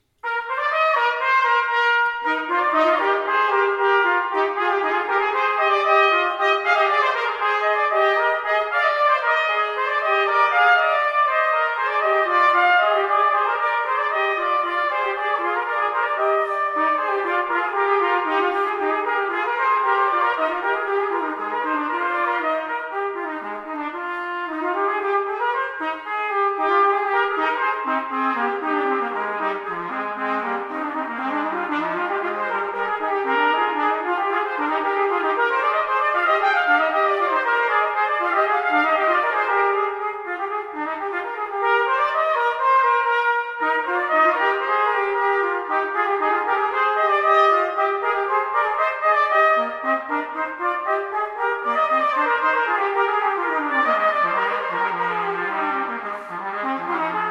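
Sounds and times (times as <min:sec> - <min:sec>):
trumpet duet: 0:00.0 - 0:57.3.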